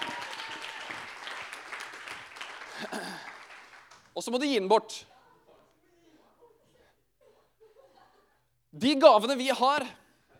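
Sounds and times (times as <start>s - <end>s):
audience in a hall clapping: 0.0s - 4.2s
speech: 4.2s - 5.1s, 8.8s - 10.0s.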